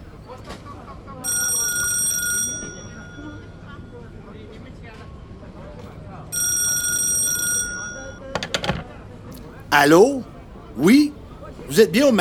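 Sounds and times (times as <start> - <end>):
old-fashioned telephone bell ringing in Sainte-Anicette: 1.2 - 3.9, 6.4 - 8.3
faint voices murmuring: 9.7 - 12.1
speech: 9.8 - 11.1, 11.7 - 12.1.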